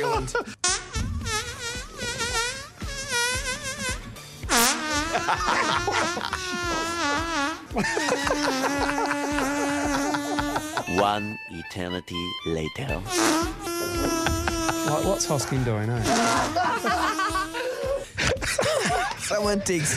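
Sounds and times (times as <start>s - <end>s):
laughter: 0.0s - 0.5s, 5.0s - 7.0s, 7.7s - 11.1s, 13.8s - 19.9s
long buzzy sputtering fart: 0.6s - 11.0s, 13.0s - 18.1s
speech: 7.7s - 9.0s, 11.0s - 17.5s, 19.3s - 19.9s.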